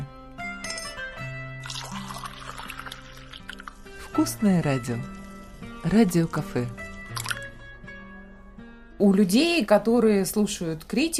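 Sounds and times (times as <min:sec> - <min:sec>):
soft tonal music: 0:00.0 - 0:11.1
coffee pouring into a cup: 0:01.6 - 0:04.2, 0:05.1 - 0:07.5
speech: 0:04.2 - 0:05.2, 0:05.8 - 0:06.8, 0:09.0 - 0:11.1.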